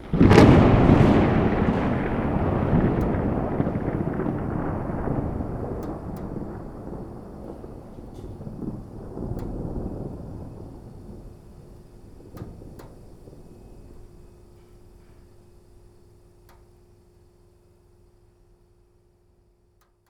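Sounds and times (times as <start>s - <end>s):
heavy thunder: 0.0s - 15.8s.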